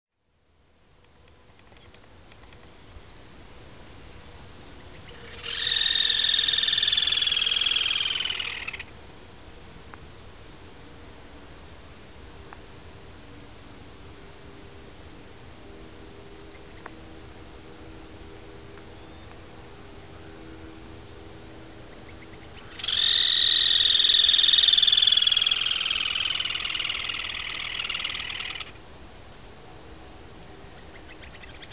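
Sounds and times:
song of the sanhaçu-pardo: 5.1s - 8.8s, 22.1s - 28.7s.

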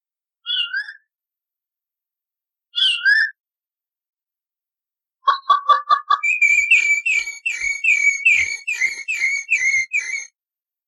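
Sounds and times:
Rufous-bellied Thrush singing whistled notes: 5.3s - 10.4s.

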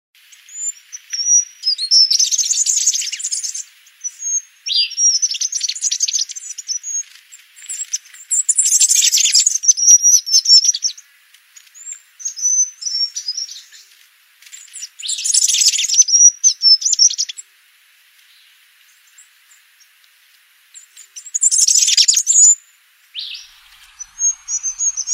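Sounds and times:
fura-flor azulado bird singing: 0.3s - 11.0s, 14.7s - 17.4s, 20.8s - 25.1s.

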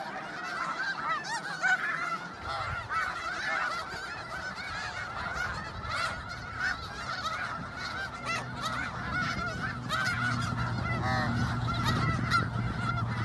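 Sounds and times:
snow goose flock honking: 0.0s - 13.2s
low humming rumble: 5.8s - 13.2s.

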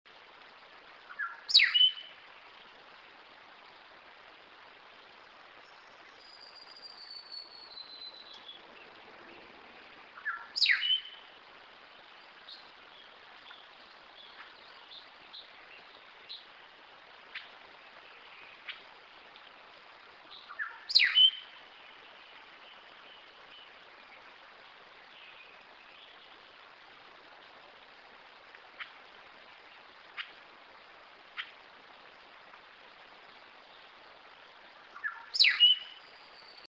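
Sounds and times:
weaver bird singing: 1.2s - 2.0s, 6.2s - 8.7s, 10.2s - 11.2s, 20.3s - 21.5s, 35.0s - 36.6s.

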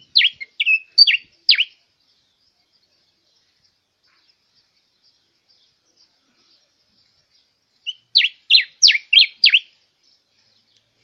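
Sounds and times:
diuca finch song: 0.0s - 11.0s.

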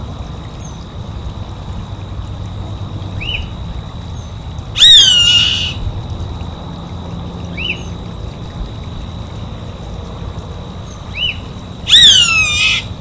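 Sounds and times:
steady high hum: 0.0s - 12.9s
faint arched notes from a smaller bird: 4.2s - 5.8s, 10.8s - 12.9s
savanna hawk screaming: 4.8s - 5.8s, 11.9s - 12.9s.

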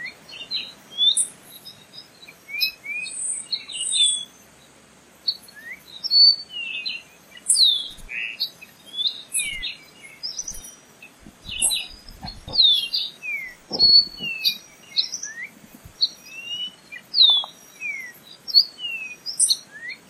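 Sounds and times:
Moriche Oriole whistled song: 0.0s - 4.4s, 5.3s - 20.0s
soft low knocks: 13.6s - 14.4s.

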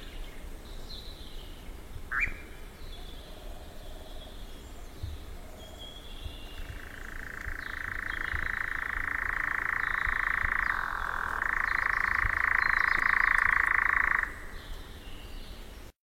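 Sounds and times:
European nightjar singing: 2.1s - 14.6s.

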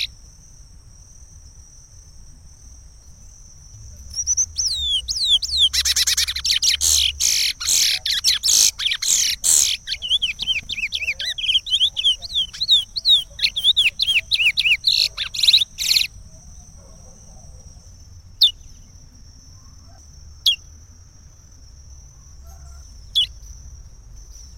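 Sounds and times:
chestnut-bellied seed finch singing: 4.0s - 16.2s.

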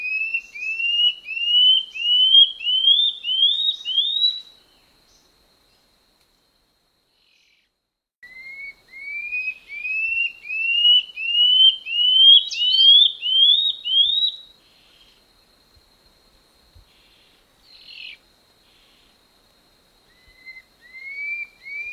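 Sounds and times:
common scale-backed antbird song of upslurred whistles: 0.0s - 4.6s, 8.2s - 15.1s, 20.1s - 21.9s.

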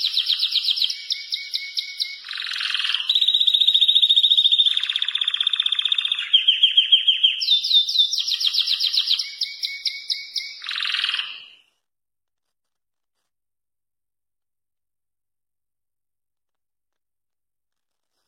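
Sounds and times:
German crested canary singing continuous rolling trills: 0.0s - 11.7s.

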